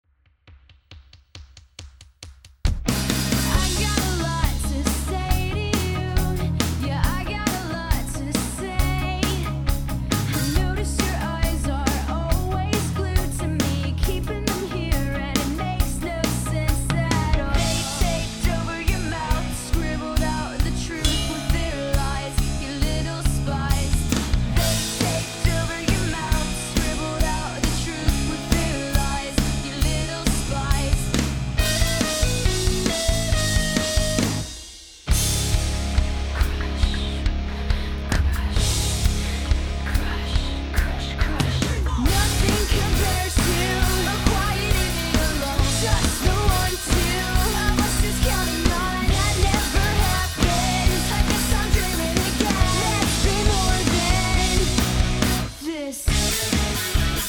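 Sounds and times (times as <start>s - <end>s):
prog music: 2.7s - 57.2s.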